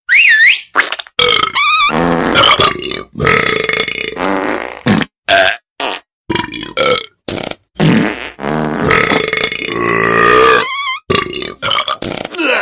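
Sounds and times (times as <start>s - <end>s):
farting: 0.8s - 5.1s, 7.3s - 12.4s
burping: 1.2s - 4.2s, 4.9s - 5.6s, 6.3s - 12.6s.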